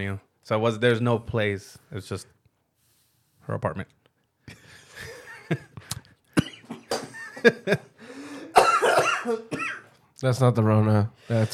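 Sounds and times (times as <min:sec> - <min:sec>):
speech: 0:00.0 - 0:02.4, 0:03.5 - 0:04.6, 0:05.5 - 0:05.7, 0:07.4 - 0:07.9, 0:09.2 - 0:09.6, 0:10.2 - 0:11.5
man laughing and coughing after inhaling wrong in a dusty room: 0:04.5 - 0:09.9.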